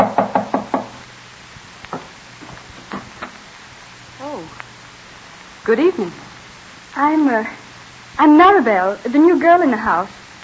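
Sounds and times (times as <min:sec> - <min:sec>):
firm knocks on a wooden door: 0:00.0 - 0:01.0
speech: 0:05.7 - 0:06.2, 0:07.0 - 0:07.6, 0:08.2 - 0:10.2.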